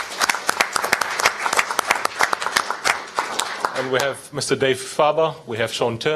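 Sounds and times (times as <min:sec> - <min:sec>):
audience applauding: 0:00.0 - 0:04.2
speech: 0:03.8 - 0:06.1.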